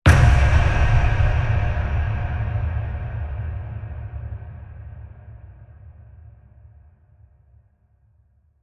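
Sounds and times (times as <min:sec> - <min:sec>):
deep shock hit: 0:00.1 - 0:05.3.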